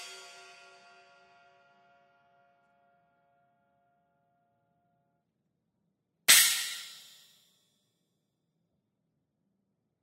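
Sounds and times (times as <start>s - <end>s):
pre-configured stacked cymbal crash: 6.3s - 7.4s.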